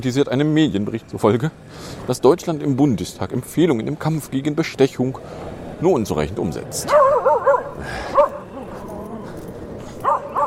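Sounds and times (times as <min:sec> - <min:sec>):
speech: 0:00.0 - 0:08.1
dog barking: 0:06.9 - 0:08.4, 0:10.0 - 0:10.4.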